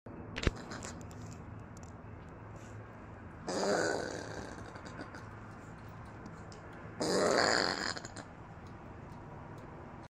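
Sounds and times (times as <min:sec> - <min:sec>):
opossum vocalizing: 0:00.5 - 0:01.0, 0:03.5 - 0:05.4, 0:07.0 - 0:08.4.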